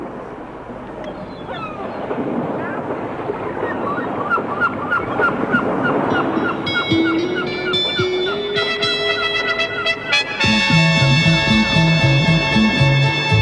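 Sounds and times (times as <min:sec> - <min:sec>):
seaside waves washing: 0:00.0 - 0:13.4
seagulls crying: 0:03.6 - 0:10.4
sustained musical tones and a melody: 0:05.9 - 0:13.4.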